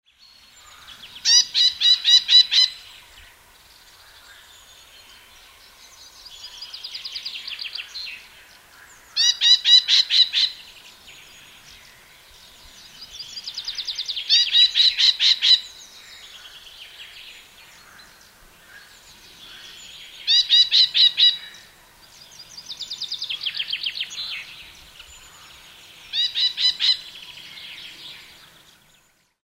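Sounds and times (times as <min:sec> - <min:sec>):
Krüper's nuthatch calling: 0:00.6 - 0:02.9, 0:09.1 - 0:10.7, 0:13.1 - 0:16.6, 0:18.6 - 0:21.8, 0:22.4 - 0:27.8.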